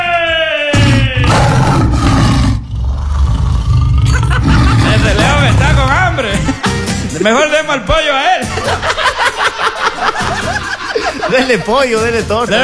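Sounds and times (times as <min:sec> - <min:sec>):
lion roaring: 0:00.8 - 0:06.6
laughter: 0:04.0 - 0:07.3, 0:08.4 - 0:12.6
speech: 0:07.2 - 0:08.3, 0:11.3 - 0:12.6.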